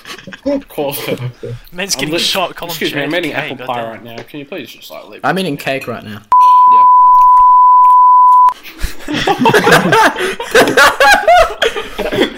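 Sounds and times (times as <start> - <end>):
people laughing: 0.0 - 1.6, 8.6 - 12.3
speech: 0.4 - 6.4, 9.3 - 12.3
censor bleep tone: 6.3 - 8.5.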